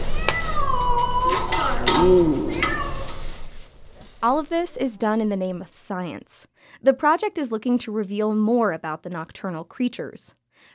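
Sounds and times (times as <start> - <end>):
distressed cat trapped in a raccoon trap yowling: 0.0 - 3.3
speech: 2.0 - 2.5, 4.2 - 10.7.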